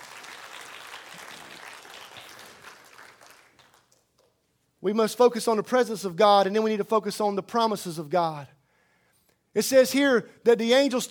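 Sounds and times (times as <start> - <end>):
large crowd clapping and applauding: 0.0 - 4.0
speech: 4.8 - 8.6, 9.6 - 11.0.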